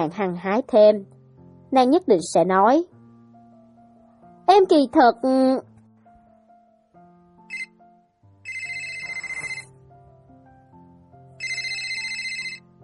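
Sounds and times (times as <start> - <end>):
speech: 0.0 - 2.9, 4.5 - 5.7
soft steady music: 0.0 - 12.8
mobile phone on a tea table ringing with default ringtone: 7.5 - 7.8, 8.4 - 9.8, 11.4 - 12.8.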